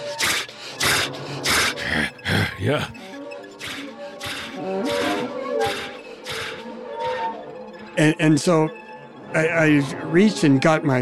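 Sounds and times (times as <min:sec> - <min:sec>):
animal biting a person's leg huffing and breathing heavily: 0:00.0 - 0:02.9, 0:03.6 - 0:06.6
speech: 0:02.0 - 0:03.0, 0:08.0 - 0:11.0.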